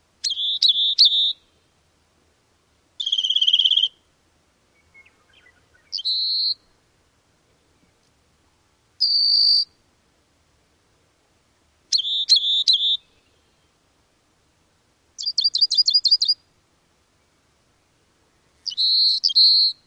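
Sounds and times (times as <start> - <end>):
Rock Wren song: 0.2 - 1.6, 3.0 - 4.0, 4.7 - 6.8, 9.0 - 9.7, 11.9 - 13.8, 15.2 - 16.5, 18.3 - 19.8.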